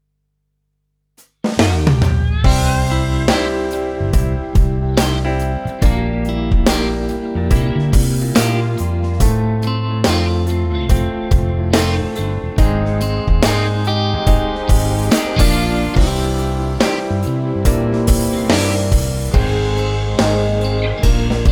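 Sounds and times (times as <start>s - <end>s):
acoustic pop music: 2.2s - 21.4s.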